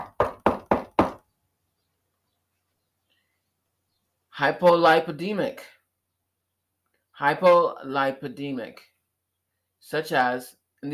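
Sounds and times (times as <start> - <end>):
firm knocking on a wooden door: 0.0 - 1.2
speech: 4.4 - 5.8, 7.2 - 8.9, 9.8 - 10.9.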